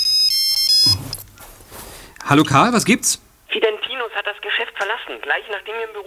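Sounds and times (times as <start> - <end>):
mobile phone ringtone with bright high electronic melody: 0.0 - 1.3
speech: 2.3 - 6.0.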